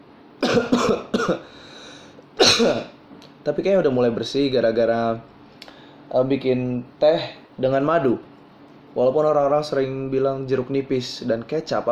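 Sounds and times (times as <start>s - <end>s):
person coughing: 0.4s - 1.6s, 2.4s - 3.0s
speech: 2.6s - 5.3s, 6.1s - 8.3s, 9.0s - 11.9s.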